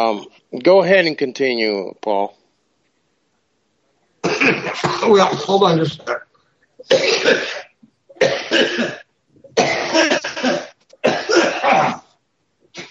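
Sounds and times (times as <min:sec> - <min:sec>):
speech: 0:00.0 - 0:02.4, 0:04.4 - 0:09.0, 0:09.6 - 0:12.0
person with belly fever coughing harshly: 0:04.2 - 0:06.2, 0:06.8 - 0:12.1.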